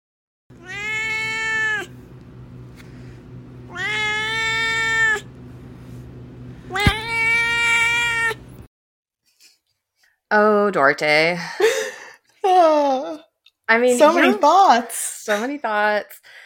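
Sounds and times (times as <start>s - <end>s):
low steady hum: 0.5s - 8.7s
cat meowing: 0.6s - 1.9s, 3.7s - 5.3s, 6.7s - 8.4s
speech: 10.3s - 11.8s, 12.5s - 16.4s.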